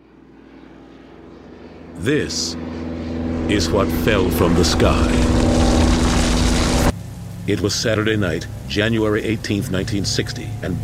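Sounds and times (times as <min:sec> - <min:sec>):
engines of a 1930s propeller-driven DC-3 airplane droning: 0:00.0 - 0:10.8
speech: 0:02.0 - 0:02.9, 0:03.5 - 0:05.3, 0:07.5 - 0:10.8.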